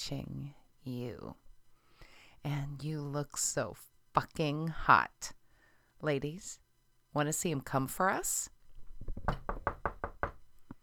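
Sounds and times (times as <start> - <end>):
speech: 0.0 - 1.5, 2.4 - 5.4, 6.0 - 8.6, 9.3 - 9.5
rapid knocking on a door: 9.0 - 10.4.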